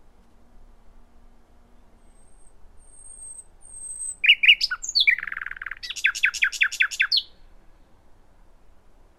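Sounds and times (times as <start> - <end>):
common nightingale Luscinia megarhynchos singing: 2.0 - 7.5.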